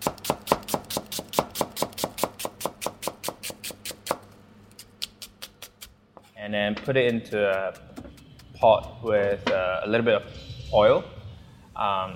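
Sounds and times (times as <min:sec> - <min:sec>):
knife roughly slicing an onion: 0:00.0 - 0:04.2, 0:06.7 - 0:09.4
speech: 0:06.5 - 0:07.9, 0:08.6 - 0:11.1, 0:11.8 - 0:12.1.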